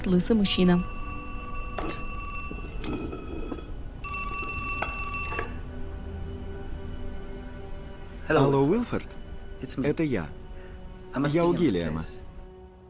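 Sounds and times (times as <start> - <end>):
speech: 0.0 - 1.0, 2.9 - 3.2, 8.3 - 10.4, 11.1 - 12.2
wall telephone aboard a train ringing with a bright metallic bell trill: 0.5 - 5.8.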